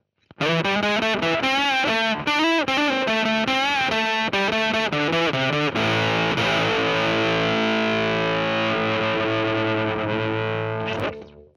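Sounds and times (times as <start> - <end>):
octave fuzz guitar: 0.3 - 11.5.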